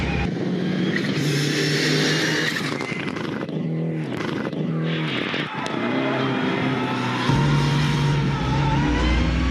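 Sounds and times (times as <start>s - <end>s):
Lancer Evo 6 car engine revving: 0.0s - 9.4s.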